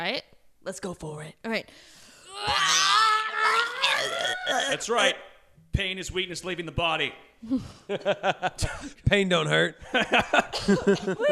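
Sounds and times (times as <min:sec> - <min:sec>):
speech: 0:00.0 - 0:03.0, 0:04.0 - 0:11.2
adults screaming in imitation of crying babies: 0:02.3 - 0:05.1
laughter: 0:07.9 - 0:08.9, 0:09.8 - 0:11.2.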